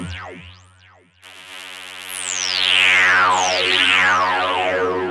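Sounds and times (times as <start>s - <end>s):
Moog-style analog synth lead: 2.7s - 5.0s.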